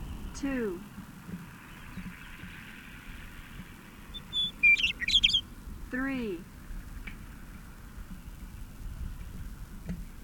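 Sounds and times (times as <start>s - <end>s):
speech: 0.4s - 1.0s, 5.9s - 6.5s
polished bird song of high bright chirps and whistled notes: 4.1s - 5.4s.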